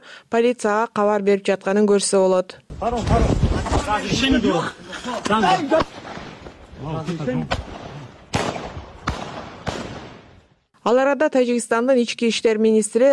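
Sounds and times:
speech: 0:00.3 - 0:06.0, 0:06.8 - 0:07.7, 0:10.8 - 0:13.1
gunshots during a filmed fight: 0:05.2 - 0:10.6.

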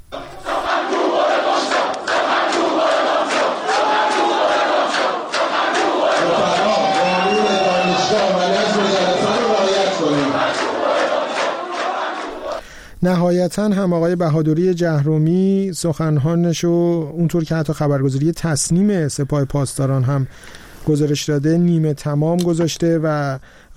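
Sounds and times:
students protesting at a university, crowd shouting and chanting: 0:00.1 - 0:12.6
speech: 0:13.0 - 0:23.7.

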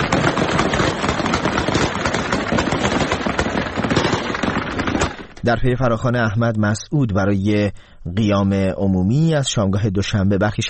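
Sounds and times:
heavy gunfire dispersing protesters: 0:00.0 - 0:05.4
speech: 0:05.4 - 0:10.6.

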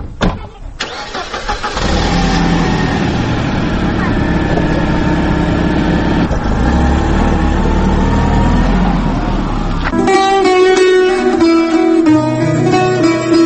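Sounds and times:
car engine running as car drives off: 0:00.0 - 0:10.5
music: 0:09.9 - 0:13.4.

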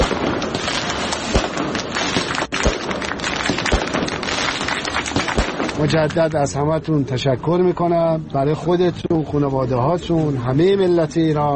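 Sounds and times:
sharp loud bangs: 0:00.0 - 0:06.2
dense continuous crackle of firecrackers set off outdoors by supporters at a birthday celebration: 0:00.0 - 0:06.6
speech: 0:05.8 - 0:11.5.

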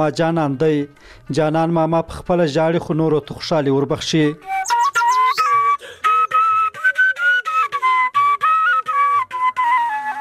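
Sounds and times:
speech: 0:00.0 - 0:04.8
breathy shepelai flute melody played in a village in Khwaja Omari district: 0:04.4 - 0:10.1
brief breaths of the flute player: 0:05.8 - 0:06.1.

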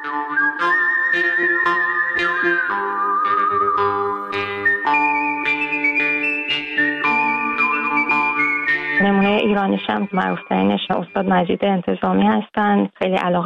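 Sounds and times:
orchestral backing with plucked and percussive accents: 0:00.0 - 0:10.7
whistled melody from a western film score: 0:00.0 - 0:11.8
speech: 0:09.4 - 0:13.4.

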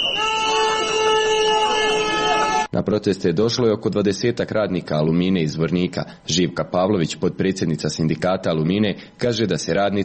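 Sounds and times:
horns blaring at a workers' protest march: 0:00.0 - 0:02.7
speech: 0:02.8 - 0:10.0.

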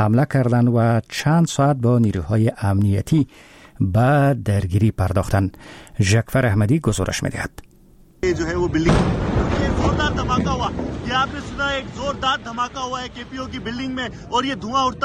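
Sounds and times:
speech: 0:00.0 - 0:15.0
steady wind-like noise: 0:08.0 - 0:15.0
loud explosion in live TV footage: 0:08.3 - 0:14.7.

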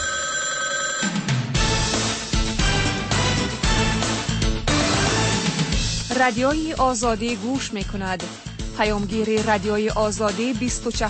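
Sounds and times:
telephone bell ringing: 0:00.0 - 0:01.5
dense full musical backing: 0:01.5 - 0:11.0
speech: 0:06.2 - 0:11.0.

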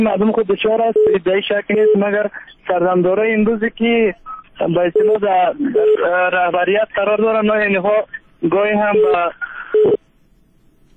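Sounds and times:
speech: 0:00.0 - 0:10.0
telephone tone as a caller's line is cut off: 0:01.0 - 0:01.2, 0:01.8 - 0:02.1, 0:05.0 - 0:06.1, 0:08.9 - 0:10.1.

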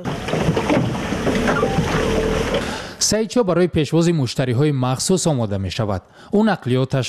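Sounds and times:
rushing river water: 0:00.0 - 0:02.7
water taxi boat engine on a river: 0:00.0 - 0:03.0
speech: 0:02.6 - 0:07.0.

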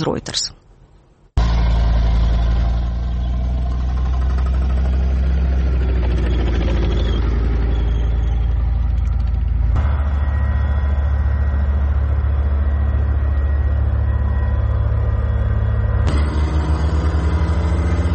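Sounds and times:
speech: 0:00.0 - 0:00.6
heavy armored self-propelled anti-aircraft gun engine idling: 0:01.4 - 0:18.1.

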